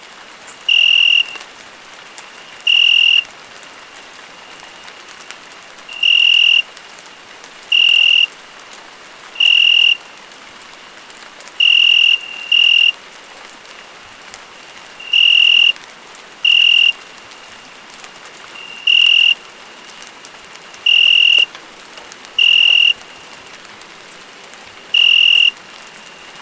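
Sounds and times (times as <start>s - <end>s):
rain falling: 0.0s - 26.3s
cricket chirping in pure-toned bursts: 0.6s - 1.4s, 2.6s - 3.3s, 5.9s - 6.6s, 7.7s - 8.3s, 9.4s - 10.0s, 11.6s - 13.0s, 15.0s - 15.8s, 16.4s - 17.6s, 18.6s - 20.0s, 20.8s - 21.5s, 22.4s - 23.2s, 24.9s - 26.3s.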